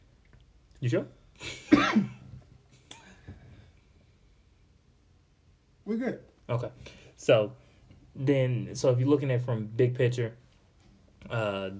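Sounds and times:
speech: 0.8s - 2.2s, 5.9s - 7.6s, 8.2s - 10.4s, 11.2s - 11.7s
harsh cough: 1.4s - 2.3s.

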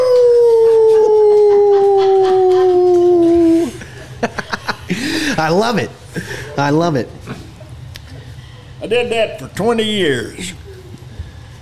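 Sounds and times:
wolf howl in a radio station jingle: 0.0s - 3.8s
laughter: 0.7s - 5.4s
speech: 5.4s - 7.2s, 8.9s - 10.5s.

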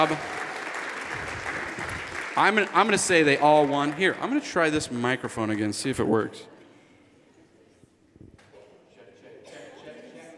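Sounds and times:
speech: 0.0s - 0.4s, 2.4s - 6.5s
audience applause of many hands clapping: 0.0s - 4.8s.

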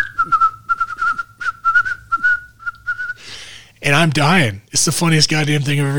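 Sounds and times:
person whistling a tune imitating a whistle being blown: 0.0s - 3.3s
speech: 3.9s - 5.9s.

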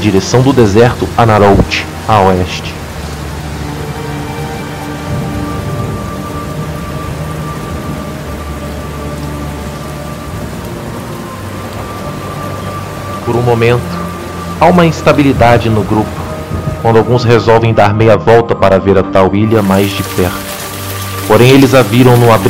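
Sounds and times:
speech: 0.0s - 2.8s, 13.5s - 14.0s, 14.6s - 20.5s, 21.3s - 22.4s
heavy steady rain: 0.0s - 17.8s, 19.4s - 22.4s
deep rolling thunder: 5.1s - 8.2s.

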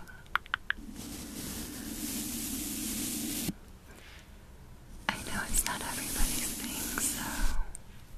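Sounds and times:
hand tapping: 0.3s - 0.8s
hands rubbing: 0.4s - 3.5s, 5.1s - 7.7s.

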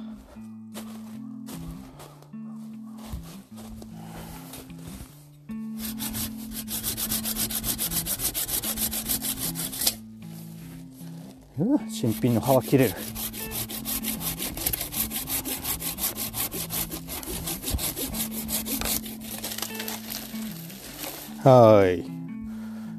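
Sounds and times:
handsaw rasping through a thin tree: 5.8s - 10.0s, 11.9s - 21.4s
speech: 11.6s - 13.2s, 21.4s - 22.1s.

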